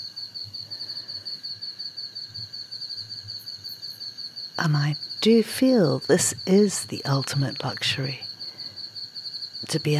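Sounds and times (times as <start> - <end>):
cricket trill at night: 0.0 - 9.9
speech: 4.6 - 8.2, 9.6 - 9.9.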